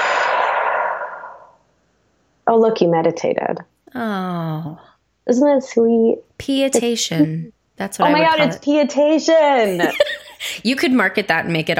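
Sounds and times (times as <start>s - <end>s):
deep slow breath in and out: 0.0s - 1.8s
speech: 2.5s - 11.7s
laughter: 9.7s - 10.6s.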